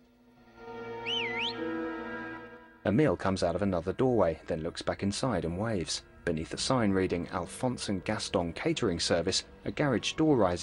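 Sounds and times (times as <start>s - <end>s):
milkman whistling in an alleyway: 1.0s - 1.6s
speech: 2.8s - 10.6s.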